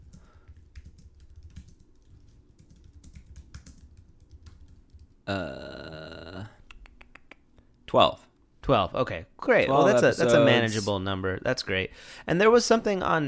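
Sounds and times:
typing on a computer keyboard: 0.0 - 5.2
speech: 5.3 - 5.8, 7.9 - 13.2
short loud throaty burp-like sound: 5.3 - 6.5.

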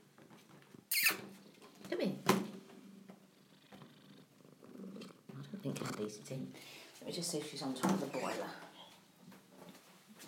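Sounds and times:
domestic cat purring: 2.7 - 6.6
speech: 6.0 - 8.7.

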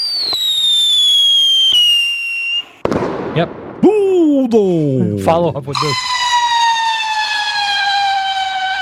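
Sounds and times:
bottle rocket shrill whistle gliding downward in pitch: 0.0 - 2.8, 5.7 - 8.7
sharp crackling pops: 0.0 - 3.9
speech: 3.4 - 6.2.

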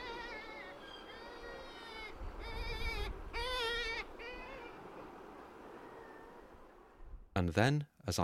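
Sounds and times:
Black-legged Kittiwake aerial alarm calls to a predator: 0.0 - 4.8
speech: 7.4 - 8.2.

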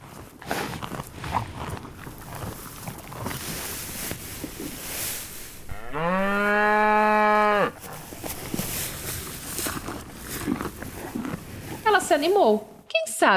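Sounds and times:
outdoor rustling: 0.0 - 13.0
faint footsteps: 0.6 - 12.8
spotted cow mooing in a green field: 5.6 - 8.0
speech: 12.2 - 13.3.

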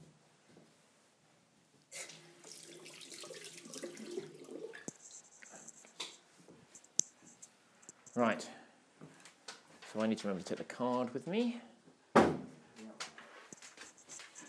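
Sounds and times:
water running from a sink tap while hands are washed: 2.0 - 5.0
speech: 8.2 - 8.6, 10.0 - 11.7.

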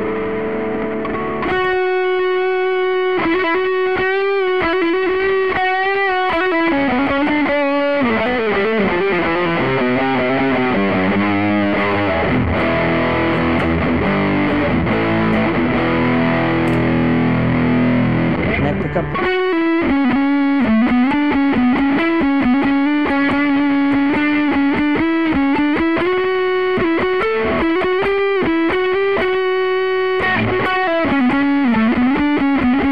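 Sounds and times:
heavily distorted electric guitar through an amp with drive and gain nearly full: 0.0 - 32.9.

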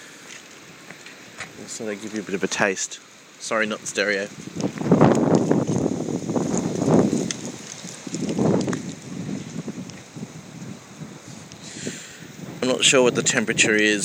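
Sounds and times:
strong wind roaring through a group of trees on a windy day: 0.0 - 14.0
speech: 1.6 - 4.8, 12.8 - 14.0
wind buffeting against the microphone: 3.8 - 14.0.

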